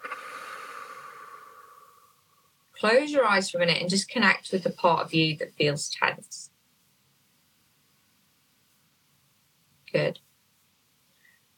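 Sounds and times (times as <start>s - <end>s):
slow deep breath in through nose, out through mouth in a guided relaxation exercise: 0.0s - 2.6s
speech: 2.8s - 6.5s, 10.0s - 10.2s.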